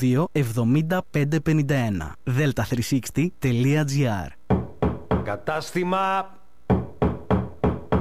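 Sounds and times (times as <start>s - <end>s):
speech: 0.0s - 4.4s, 5.2s - 6.4s
firm knocking on a door: 4.5s - 5.4s, 6.7s - 8.0s.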